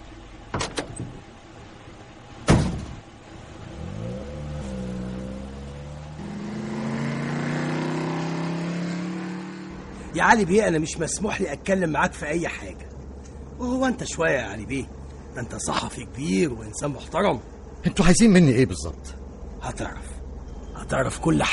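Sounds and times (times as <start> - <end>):
car doors shutting: 0.5 - 1.2, 2.4 - 3.1
taxi engine revving and pulling away: 3.3 - 10.5
speech: 10.2 - 12.9, 13.6 - 20.1, 20.9 - 21.5.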